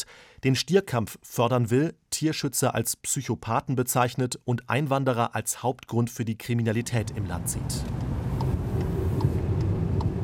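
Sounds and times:
speech: 0.4s - 8.1s
car engine and road rumble while driving along a road: 6.9s - 10.2s.

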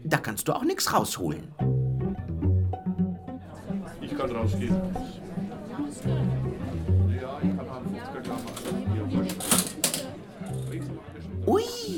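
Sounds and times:
speech: 0.1s - 1.8s, 4.2s - 5.2s, 5.9s - 6.6s
low chatter from people: 3.0s - 11.9s
old mechanical cash register being operated: 8.3s - 10.1s.

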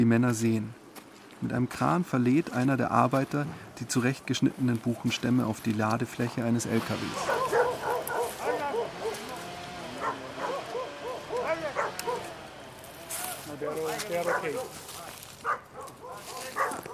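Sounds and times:
speech: 0.0s - 0.8s, 1.4s - 7.5s
logging workers calling the dogs back: 7.1s - 15.3s
dogs barking and yipping in a national park: 7.2s - 16.9s.

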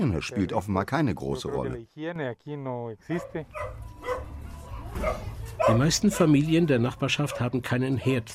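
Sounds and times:
speech: 0.0s - 4.1s, 4.9s - 8.3s
dog yipping: 3.2s - 4.3s, 5.0s - 6.4s
dog barking in a poor neighbourhood of Guatemala's capital: 3.2s - 4.4s, 5.0s - 6.5s, 7.3s - 7.5s.

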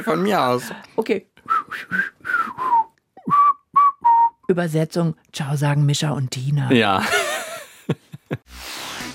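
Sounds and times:
speech: 0.0s - 2.4s, 4.5s - 8.8s
person whistling a short breathy tune: 1.5s - 4.5s
laughter: 6.7s - 8.4s.

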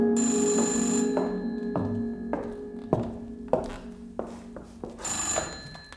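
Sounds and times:
old-style telephone bell ringing: 0.2s - 2.3s, 5.0s - 5.9s.

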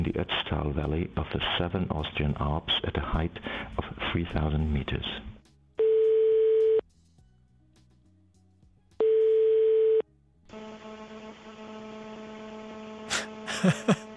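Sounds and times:
speech: 0.0s - 5.3s, 13.6s - 14.1s
telephone ring tones: 5.8s - 6.8s, 9.0s - 10.0s
laughter: 13.1s - 14.1s.

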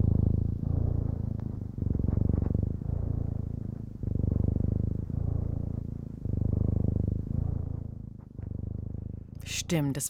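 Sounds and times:
cat purring deeply: 0.0s - 10.0s
speech: 9.5s - 10.0s.

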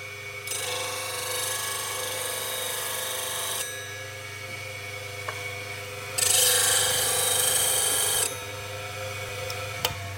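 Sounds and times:
sharpening machine motor hum: 0.0s - 10.1s.

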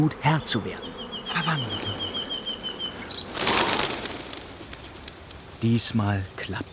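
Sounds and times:
speech: 0.0s - 2.1s, 5.6s - 6.7s
large flock of birds flapping wings taking off: 2.6s - 6.7s.

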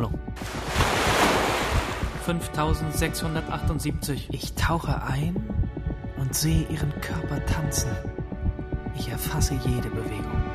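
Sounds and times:
ocean waves surging: 0.4s - 2.2s
speech: 2.3s - 5.6s, 6.2s - 8.2s, 9.0s - 10.5s.

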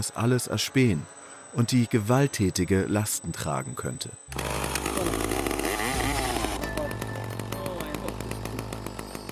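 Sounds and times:
speech: 0.0s - 5.2s
chainsaw mounted on an eight-propeller octocopter drone buzzing on a farm in Finnish winter: 4.3s - 9.2s
eight-propeller octocopter drone rotor hum: 4.3s - 9.2s.

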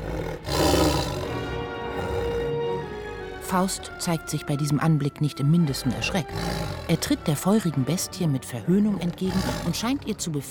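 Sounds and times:
tiger roaring: 0.0s - 3.4s, 5.8s - 7.6s, 8.9s - 10.3s
speech: 3.5s - 10.4s.

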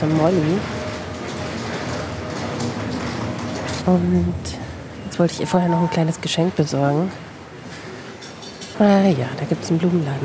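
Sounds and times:
speech: 0.0s - 0.8s, 3.9s - 4.6s, 5.2s - 7.2s, 8.8s - 10.2s
train idling or rolling in a train station: 0.0s - 7.1s
busy train station noise: 0.0s - 10.2s.

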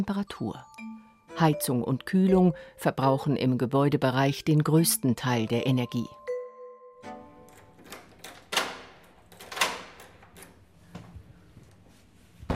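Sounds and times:
speech: 0.0s - 6.2s
heavy door being opened: 7.4s - 11.1s.

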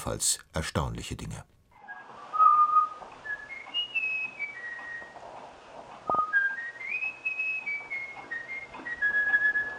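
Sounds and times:
speech: 0.0s - 1.6s
bullfinch whistling a melody taught by a researcher: 1.8s - 5.2s, 6.1s - 9.7s.

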